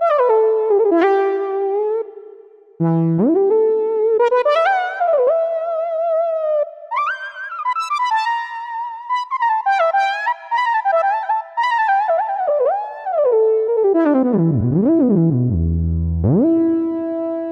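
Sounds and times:
synth: 0.1 - 8.5, 9.8 - 17.5
synth effects: 14.0 - 17.3.

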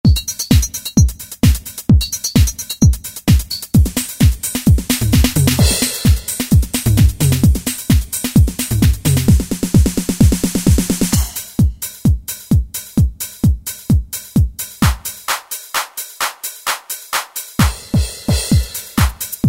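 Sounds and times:
drum machine techno house and disco preset patterns: 0.0 - 19.4.

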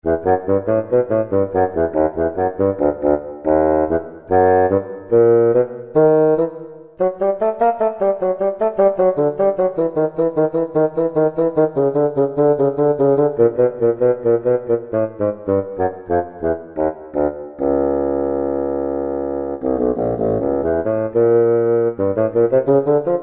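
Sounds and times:
synthesizer bassoon: 0.0 - 23.2.

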